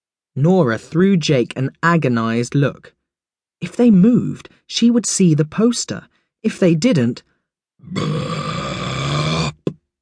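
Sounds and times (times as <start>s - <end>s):
speech: 0.4s - 3.0s, 3.6s - 8.6s
long loud rumbling burp from inside a bag: 7.8s - 9.8s
short belch: 7.8s - 9.8s.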